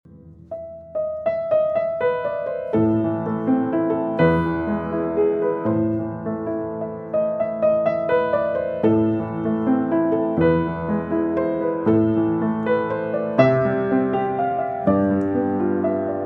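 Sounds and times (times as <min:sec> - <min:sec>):
piano: 0:00.0 - 0:16.2.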